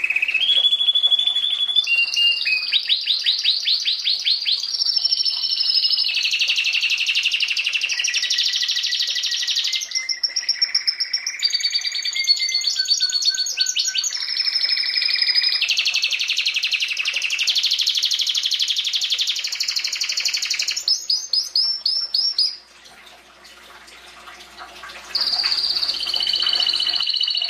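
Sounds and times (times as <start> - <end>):
canary song with rolling trills and chirps: 0.0 - 22.6, 25.1 - 27.4.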